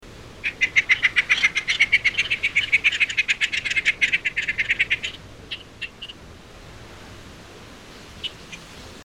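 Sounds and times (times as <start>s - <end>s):
Inca tern calling: 0.2s - 6.3s, 7.9s - 9.0s.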